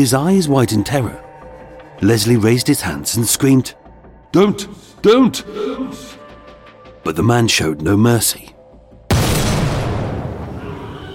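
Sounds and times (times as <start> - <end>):
speech: 0.0 - 1.2, 2.0 - 6.2, 7.1 - 8.5
12-bore shotgun shell loaded with lead shot exploding: 9.1 - 10.6.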